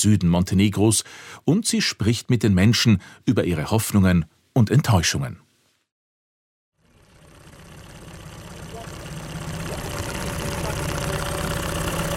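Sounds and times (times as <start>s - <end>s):
speech: 0.0s - 5.4s
boat engine humming: 6.8s - 12.1s.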